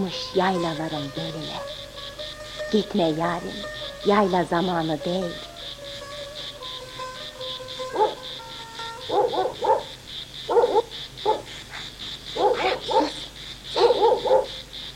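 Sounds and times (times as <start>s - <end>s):
speech: 0.0s - 1.9s, 2.7s - 5.5s
dog barking: 7.9s - 8.2s, 9.1s - 9.9s, 10.5s - 11.8s, 12.4s - 14.6s.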